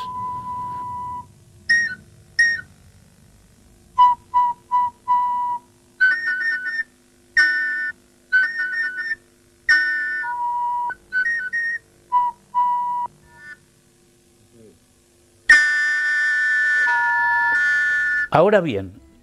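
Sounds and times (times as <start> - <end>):
steam calliope of railway whistles fed by steam from boilers playing a tune: 0.0 - 2.7, 4.0 - 13.6, 15.5 - 18.4
speech: 18.4 - 19.0.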